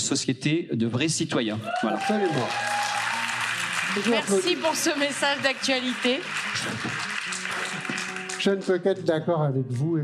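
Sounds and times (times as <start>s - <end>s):
speech: 0.1s - 2.9s, 3.9s - 7.1s, 8.4s - 10.0s
crowd applauding: 1.6s - 9.0s.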